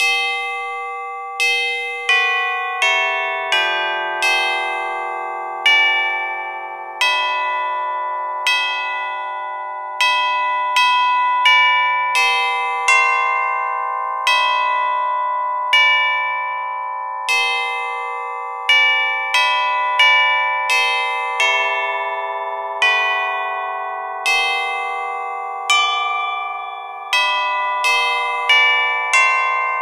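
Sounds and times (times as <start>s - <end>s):
carillon chime: 0.0s - 29.8s.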